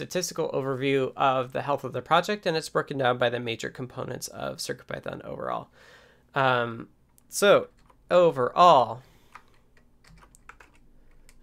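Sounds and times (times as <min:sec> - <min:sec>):
speech: 0:00.0 - 0:09.1
typing on a computer keyboard: 0:09.3 - 0:11.4.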